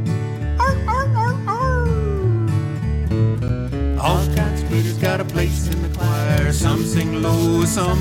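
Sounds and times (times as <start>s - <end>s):
steady bouncy music: 0.4s - 3.2s, 4.0s - 7.9s
voice imitating coyote howls: 0.6s - 2.8s
speech: 5.4s - 7.9s.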